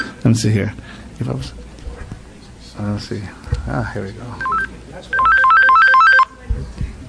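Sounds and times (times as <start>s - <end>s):
speech: 0.2s - 1.7s, 2.8s - 5.2s
cell phone ringing with warbling trill: 4.4s - 6.3s.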